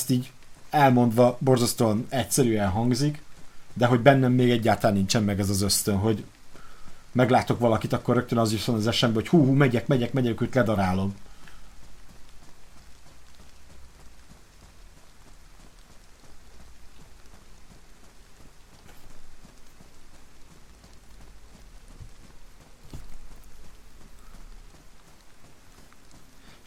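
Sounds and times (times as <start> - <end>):
speech: 0.0 - 6.4, 7.1 - 11.3
pouring rain in a console video game at sunset: 0.0 - 26.6.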